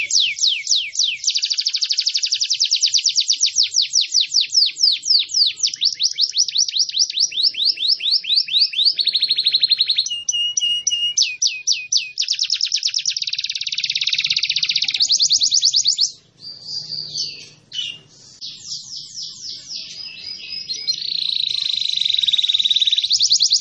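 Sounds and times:
canary singing varied phrases: 0.0 - 23.6.

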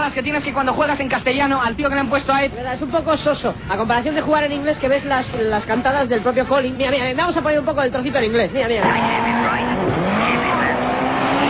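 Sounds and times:
speech: 0.1 - 9.9
rally car engine revving in a racing video game, real engine recording: 8.8 - 11.4.

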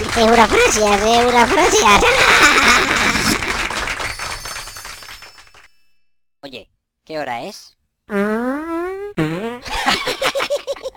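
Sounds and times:
speech: 0.2 - 3.1, 6.4 - 10.0
loud fart: 2.6 - 3.6, 8.1 - 9.8.

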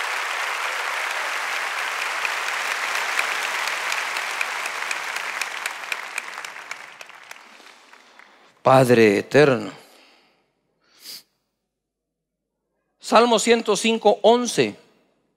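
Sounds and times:
church congregation applauding: 0.0 - 8.7
speech: 8.7 - 9.8, 13.1 - 14.8.

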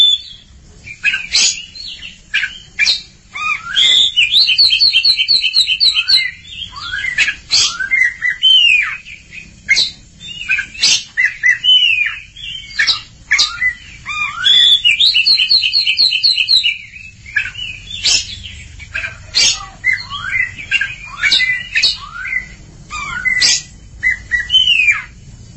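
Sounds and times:
Oriental magpie-robin song: 0.0 - 25.5.

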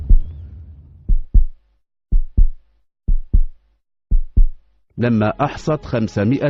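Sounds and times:
heartbeat sound effect: 0.0 - 0.3, 1.1 - 4.7
speech: 5.0 - 6.4.

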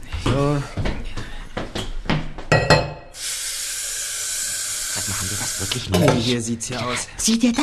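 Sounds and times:
speech: 0.3 - 0.9, 5.8 - 7.6
crockery and mugs clinking while washing up in a kitchen: 2.5 - 3.0
running water: 3.8 - 6.3.

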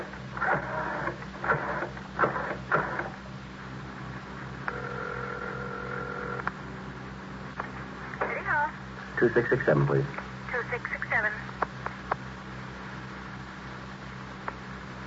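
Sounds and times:
low hum: 0.0 - 15.0
telephone dial tone: 4.7 - 6.4
voices: 8.1 - 11.5
speech: 9.2 - 10.3.

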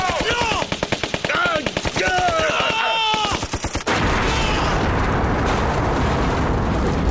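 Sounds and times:
rapid gunfire: 0.0 - 6.1
person shouting: 2.0 - 3.4, 4.2 - 4.8
bomb carried under a jacket exploding: 3.9 - 7.0.

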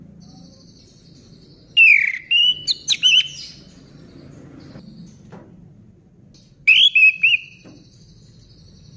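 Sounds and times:
orange-headed thrush singing whistled phrases: 1.8 - 3.6, 6.7 - 7.7.

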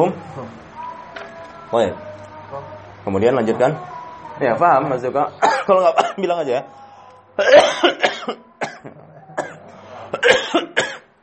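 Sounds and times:
speech: 0.0 - 0.6, 1.7 - 6.8, 7.4 - 9.2, 10.2 - 10.8
person coughing during an Islamic jurisprudence lesson: 5.5 - 6.2, 7.4 - 11.1.

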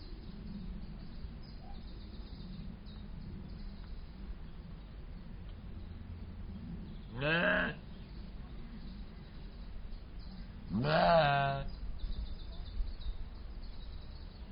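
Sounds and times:
Soay sheep bleating in a zoo in the Eifel region, Germany: 7.2 - 7.8, 10.7 - 11.7.

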